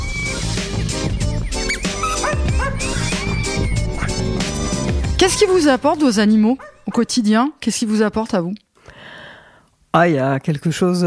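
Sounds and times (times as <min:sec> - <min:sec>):
female dog barking and yipping excitedly: 0:00.0 - 0:07.2
speech: 0:05.2 - 0:08.7, 0:10.0 - 0:11.0.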